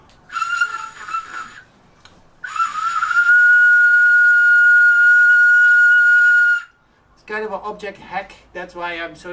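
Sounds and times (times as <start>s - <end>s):
shrill breathy whistle blown through a small snail shell: 0.3s - 1.7s, 2.4s - 6.8s
speech: 7.5s - 9.3s.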